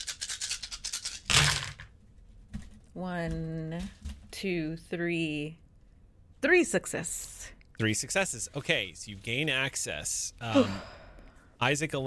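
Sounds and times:
metal dice clattering: 0:00.0 - 0:01.9
speech: 0:03.0 - 0:05.6, 0:06.4 - 0:11.0, 0:11.6 - 0:12.0
person making drawn-out vocal sounds: 0:10.4 - 0:11.0.

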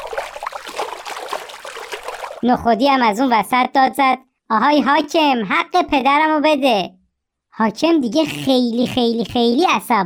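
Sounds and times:
bubbling trickles: 0:00.0 - 0:02.4
pond water gushing and splashing dousing a fire: 0:00.0 - 0:02.4
speech: 0:02.4 - 0:07.0, 0:07.6 - 0:10.0.

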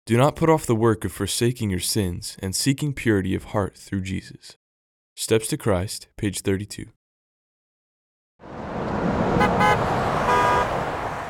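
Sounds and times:
speech: 0:00.1 - 0:04.6, 0:05.2 - 0:07.0
dense traffic rumble and steady road noise: 0:08.4 - 0:11.2
several car horns honking in traffic: 0:09.4 - 0:11.2.

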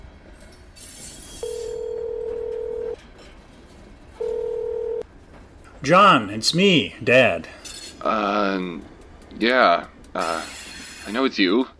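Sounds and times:
telephone line electronic tones: 0:01.4 - 0:03.0, 0:04.2 - 0:05.0
speech: 0:05.8 - 0:11.7.

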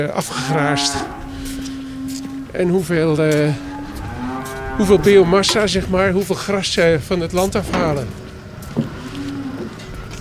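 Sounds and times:
speech: 0:00.0 - 0:01.2, 0:02.5 - 0:03.7, 0:04.8 - 0:08.2
constant outdoor hum: 0:00.0 - 0:10.1
Holstein Friesian dairy cow mooing: 0:00.2 - 0:06.0, 0:08.8 - 0:10.1.

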